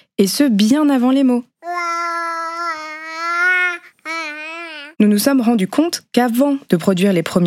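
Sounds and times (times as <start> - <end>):
speech: 0.2 - 1.5, 5.0 - 7.4
baby babbling in long drawn-out vowel sounds: 1.6 - 5.0.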